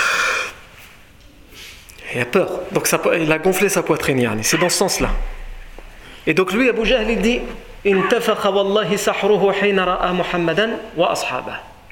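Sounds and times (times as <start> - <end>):
person sharply drawing in a breath: 0.0 - 0.7, 1.5 - 1.9, 6.0 - 6.3
speech: 2.2 - 5.4, 6.3 - 11.7.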